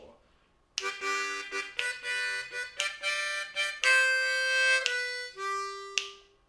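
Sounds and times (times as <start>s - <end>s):
slow harmonica lick: 0.8s - 6.4s.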